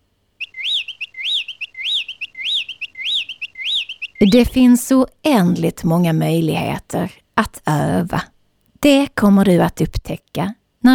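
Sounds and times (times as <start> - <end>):
bird singing a bright repeating whistled phrase: 0.4 - 4.7
speech: 4.2 - 10.9.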